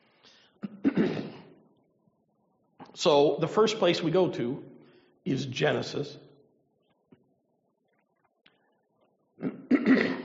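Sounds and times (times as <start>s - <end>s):
throat clearing: 0.6s - 1.6s, 9.4s - 10.2s
speech: 3.0s - 6.2s.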